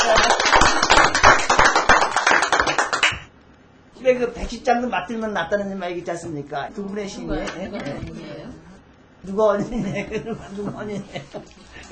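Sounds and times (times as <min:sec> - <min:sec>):
hand clapping by a guest: 0:00.0 - 0:03.3
speech: 0:04.5 - 0:08.3, 0:09.2 - 0:11.9.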